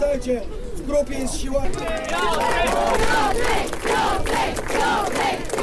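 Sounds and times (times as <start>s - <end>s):
speech: 0.2s - 5.6s
thousands of fans cheering and shouting outside Gdańsk: 1.8s - 5.6s.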